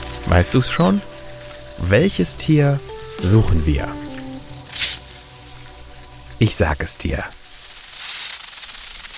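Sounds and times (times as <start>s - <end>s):
speech: 0.3s - 1.1s, 1.8s - 4.0s, 6.4s - 7.4s
snake hissing while smelling with its tongue: 4.5s - 5.6s, 7.4s - 9.1s.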